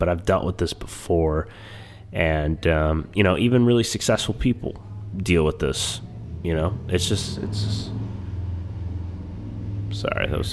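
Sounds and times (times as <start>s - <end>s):
speech: 0.0s - 8.0s, 9.9s - 10.5s
motorcycle engine rumbling while driving past: 1.5s - 10.5s.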